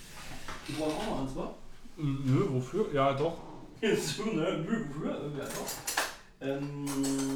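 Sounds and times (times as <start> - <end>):
speech: 0.7 - 7.3
metal cutlery rattling in a drawer while searching for a knife: 5.4 - 6.2, 6.8 - 7.3.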